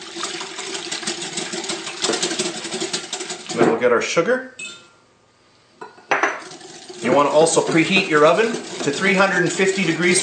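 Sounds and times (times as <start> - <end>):
milk being whisked fast in a bowl with beaten egg for cake batter: 0.0 - 3.6, 6.4 - 10.2
speech: 3.6 - 4.8, 7.1 - 10.2.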